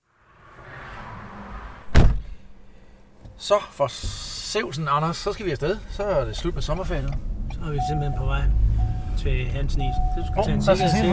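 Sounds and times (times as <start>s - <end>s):
outdoor ambience: 0.0s - 11.1s
car door slam: 1.9s - 2.4s
speech: 3.4s - 8.6s, 9.2s - 11.1s.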